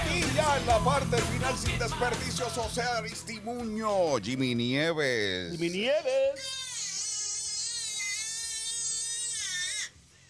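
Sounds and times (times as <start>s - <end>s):
speech: 0.4s - 6.6s
baby crying: 5.5s - 10.0s.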